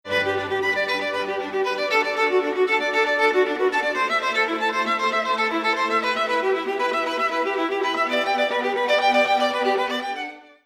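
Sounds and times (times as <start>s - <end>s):
string: 0.0s - 10.6s.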